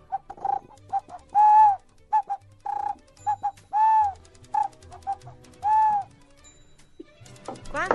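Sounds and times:
toy bird whistle chirping and warbling: 0:00.0 - 0:06.2.

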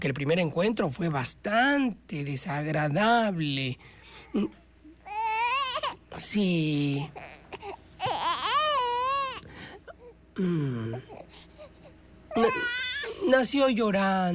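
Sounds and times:
speech: 0:00.0 - 0:04.6, 0:06.2 - 0:07.7, 0:10.4 - 0:11.2, 0:12.4 - 0:14.3
newborn baby crying: 0:05.0 - 0:06.1, 0:06.8 - 0:10.1, 0:11.1 - 0:13.4.

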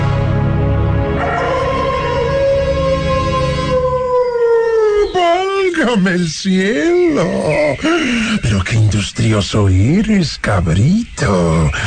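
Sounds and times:
wolf howling: 0:01.1 - 0:05.8
speech: 0:06.0 - 0:11.8.

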